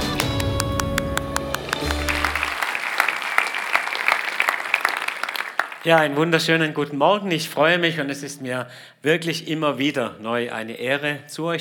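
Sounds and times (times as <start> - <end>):
crowd applause: 0.0 - 6.2
speech: 5.8 - 11.5.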